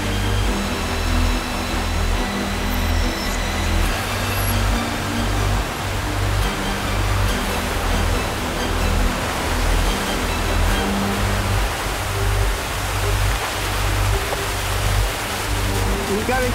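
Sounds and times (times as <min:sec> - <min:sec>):
water rushing out of a hydroelectric dam: 0:00.0 - 0:16.5.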